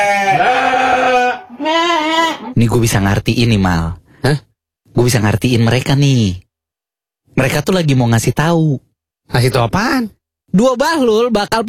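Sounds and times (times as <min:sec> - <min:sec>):
goat bleating: 0:00.0 - 0:02.6
speech: 0:02.6 - 0:06.4, 0:07.4 - 0:11.6.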